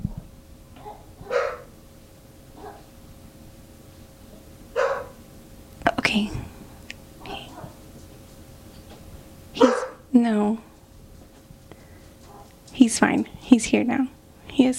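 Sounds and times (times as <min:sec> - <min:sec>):
low hum: 0:00.0 - 0:14.7
puppy barking in short sharp yips: 0:00.8 - 0:01.7, 0:02.6 - 0:02.9, 0:04.8 - 0:05.2, 0:07.3 - 0:07.8, 0:09.6 - 0:10.0
speech: 0:06.1 - 0:06.4, 0:10.2 - 0:10.7, 0:12.8 - 0:14.7.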